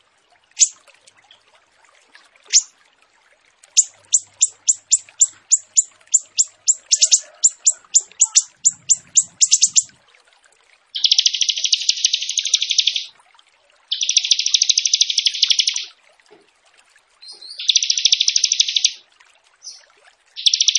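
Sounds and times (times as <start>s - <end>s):
bird singing vigorously with sharp chirps and buzzing trill: 0.6s - 0.8s, 2.5s - 2.7s, 3.8s - 10.0s, 11.0s - 13.1s, 13.9s - 15.9s, 17.2s - 19.0s, 19.6s - 19.8s, 20.4s - 20.7s.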